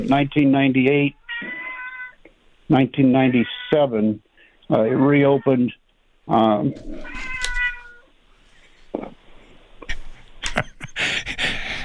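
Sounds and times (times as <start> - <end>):
speech: 0.0 - 1.2, 2.7 - 7.3
cat meowing: 1.1 - 2.2, 3.2 - 3.9, 4.7 - 5.7, 6.8 - 8.1.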